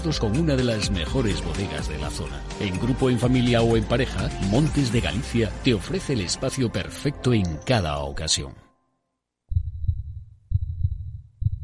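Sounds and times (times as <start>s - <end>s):
speech: 0.0s - 8.7s
deep booming heartbeat: 9.5s - 11.6s.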